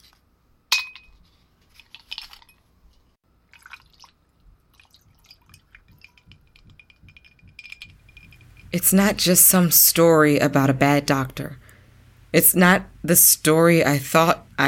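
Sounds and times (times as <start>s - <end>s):
glasses clinking in a toast: 0.7s - 1.2s, 5.2s - 8.8s
liquid trickling and dripping: 3.4s - 8.8s
speech: 8.7s - 11.6s, 12.4s - 14.6s.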